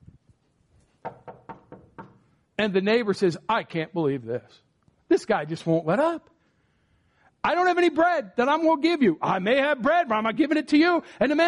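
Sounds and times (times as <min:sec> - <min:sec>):
sharp knocks on a door: 0:01.0 - 0:02.2
speech: 0:02.6 - 0:06.3, 0:07.4 - 0:11.4.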